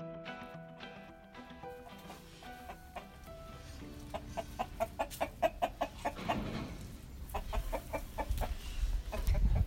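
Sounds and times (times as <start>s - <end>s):
rooster clucking on a farm: 1.8s - 3.2s, 4.0s - 9.6s.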